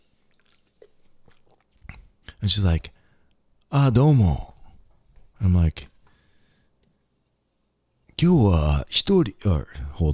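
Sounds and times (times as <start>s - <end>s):
person sipping beer: 0.0s - 2.4s
swallow: 0.0s - 2.4s
speech: 2.4s - 3.0s, 3.7s - 4.5s, 5.4s - 5.9s, 8.2s - 10.1s.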